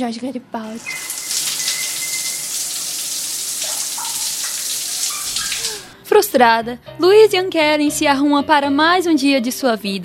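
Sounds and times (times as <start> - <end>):
speech: 0.0 - 1.2, 6.1 - 10.0
shower water running: 0.6 - 6.0.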